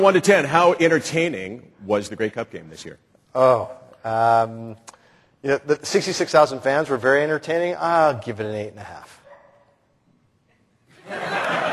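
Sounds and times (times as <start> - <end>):
speech: 0.0 - 9.2
dog barking and whining: 9.2 - 9.8
laughter: 10.9 - 11.7.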